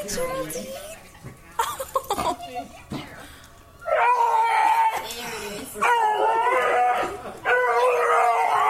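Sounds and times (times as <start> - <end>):
speech: 0.0 - 1.4, 2.5 - 3.0
dog howling: 3.8 - 5.0, 5.8 - 8.6.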